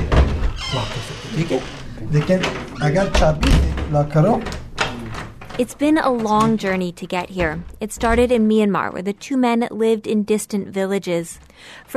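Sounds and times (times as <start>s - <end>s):
apartment front door being unlocked and handled: 0.0s - 8.6s
speech: 1.4s - 4.6s, 5.6s - 11.9s.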